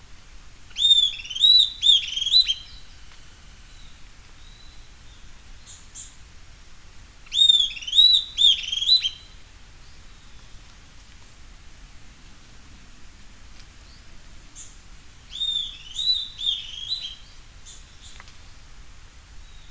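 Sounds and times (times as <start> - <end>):
low steady hiss: 0.0 - 19.6
bird singing bright whistled slurred phrases: 0.7 - 3.1, 7.3 - 9.4, 15.3 - 18.2.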